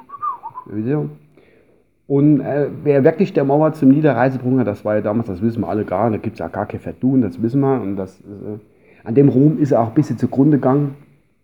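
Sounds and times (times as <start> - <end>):
whistled melody from a rock band's song: 0.0 - 0.8
speech: 0.7 - 1.2, 2.1 - 11.0.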